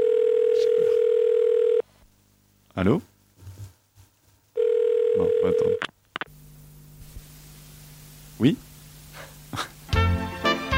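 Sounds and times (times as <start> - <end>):
ringing tone of an outgoing telephone call: 0.0 - 1.8, 4.6 - 5.8
speech: 2.8 - 3.1, 8.4 - 8.6.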